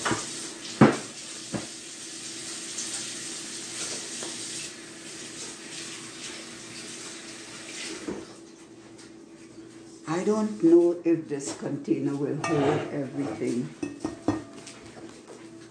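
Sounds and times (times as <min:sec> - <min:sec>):
kitchen water tap running for hand washing: 0:00.0 - 0:08.3
speech: 0:10.2 - 0:13.9.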